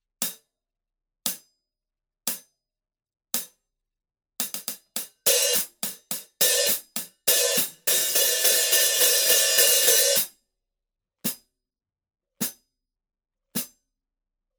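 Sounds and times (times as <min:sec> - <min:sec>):
14-inch hi-hat pattern: 0:04.5 - 0:10.3.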